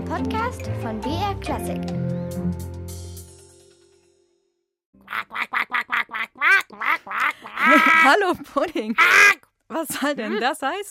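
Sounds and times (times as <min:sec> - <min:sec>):
speech: 0:00.1 - 0:02.8, 0:07.8 - 0:10.8
duck quacking: 0:05.0 - 0:08.1
laughter: 0:05.1 - 0:09.3.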